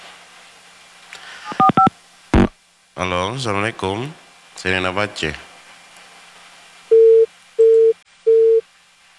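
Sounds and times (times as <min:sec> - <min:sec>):
faint hiss: 0:00.0 - 0:09.1
phone busy tone beeps after a caller's line disconnects: 0:01.5 - 0:02.5, 0:06.9 - 0:08.6
speech: 0:03.0 - 0:05.5.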